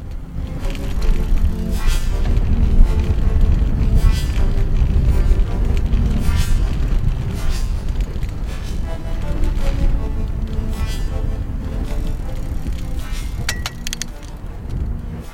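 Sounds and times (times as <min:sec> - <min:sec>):
bicycles ridden along a broad main street in a German town: 0:00.0 - 0:15.3
sharper metallic ticks: 0:00.0 - 0:15.3
light clinks and rattles: 0:13.5 - 0:14.3.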